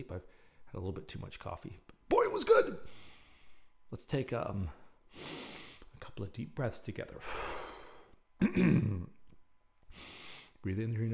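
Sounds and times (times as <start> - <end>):
speech: 0.0 - 3.1, 3.9 - 5.4, 6.0 - 7.6, 8.4 - 9.2, 9.9 - 11.1
breathy room noise: 2.8 - 3.9, 4.6 - 6.2, 7.0 - 10.7
throat-clearing cough: 8.4 - 9.2.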